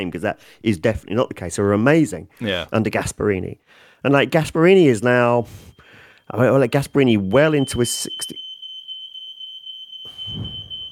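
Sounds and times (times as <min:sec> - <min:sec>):
speech: 0:00.0 - 0:08.4, 0:10.3 - 0:10.7
smoke alarm sounding in a house: 0:05.1 - 0:10.9.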